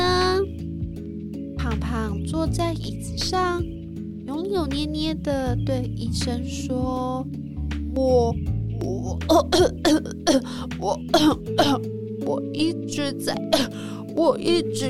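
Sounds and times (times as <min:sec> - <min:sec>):
speech: 0:01.8 - 0:14.8
person coughing and clearing throat: 0:09.3 - 0:11.8.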